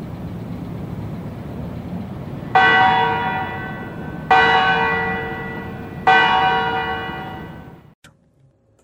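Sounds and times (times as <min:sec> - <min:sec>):
steady low rumble of outdoor noise: 0:00.0 - 0:08.8
deep resonant church bell strikes from parliament tower: 0:02.5 - 0:07.9.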